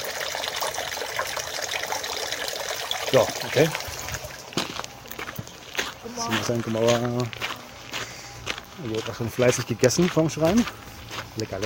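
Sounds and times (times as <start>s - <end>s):
water running into a shrine purification basin: 0.0s - 5.8s
speech: 3.1s - 3.9s, 6.2s - 7.4s, 8.8s - 10.8s, 11.4s - 11.6s.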